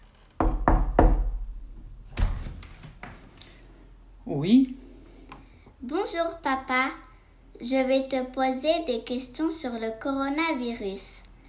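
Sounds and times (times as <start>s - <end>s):
knocking on a wooden office door at home: 0.4s - 1.5s
speech: 4.3s - 4.8s, 5.9s - 7.0s, 7.6s - 11.2s.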